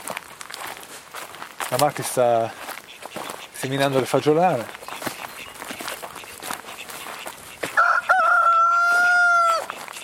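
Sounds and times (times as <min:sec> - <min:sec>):
speech: 0:01.7 - 0:02.6, 0:03.6 - 0:04.8
rooster crowing: 0:07.7 - 0:09.7.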